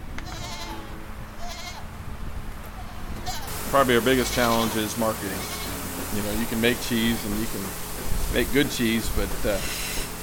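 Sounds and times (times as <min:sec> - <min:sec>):
farm animals bleating in a milking barn on a cheese-making farm: 0:00.2 - 0:01.9, 0:02.7 - 0:06.0
speech: 0:03.7 - 0:09.8.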